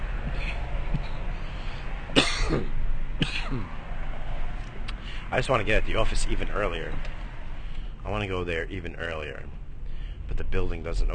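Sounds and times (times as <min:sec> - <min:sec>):
steady low rumble of noise: 0:00.0 - 0:11.1
person coughing harshly while stuck in traffic: 0:02.2 - 0:03.7
speech: 0:05.3 - 0:07.2, 0:08.0 - 0:09.6, 0:10.3 - 0:11.1.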